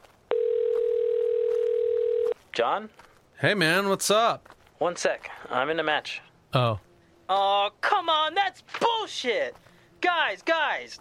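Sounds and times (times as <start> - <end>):
loud steady telephone tone on an outgoing call: 0.3 - 2.4
speech: 2.6 - 11.0.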